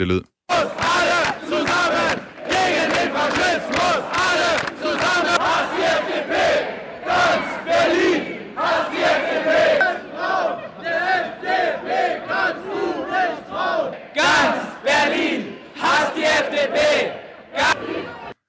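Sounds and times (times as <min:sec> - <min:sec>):
speech: 0:00.0 - 0:00.3
demonstration crowd chanting slogans in unison: 0:00.5 - 0:18.4.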